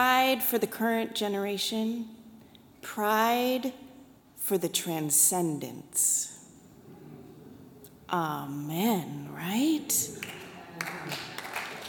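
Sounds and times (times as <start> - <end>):
speech: 0.0 - 2.2, 2.8 - 3.8, 4.5 - 6.3, 8.1 - 11.3
audience applause: 10.2 - 11.8.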